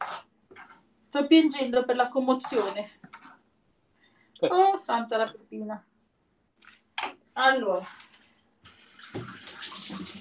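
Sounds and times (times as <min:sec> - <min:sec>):
speech: 0:01.1 - 0:03.0, 0:04.4 - 0:05.9, 0:07.4 - 0:08.1
cold water running from a tap: 0:09.0 - 0:10.2.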